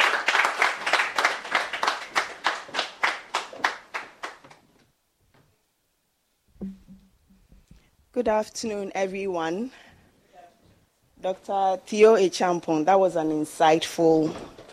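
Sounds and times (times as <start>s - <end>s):
audience clapping: 0.0s - 4.6s
low thump: 6.6s - 7.8s
speech: 8.2s - 9.8s, 11.2s - 14.7s.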